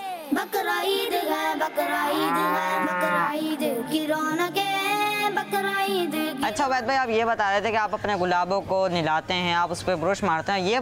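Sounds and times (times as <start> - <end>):
speech: 0.3 - 10.8
cow mooing: 2.0 - 3.5.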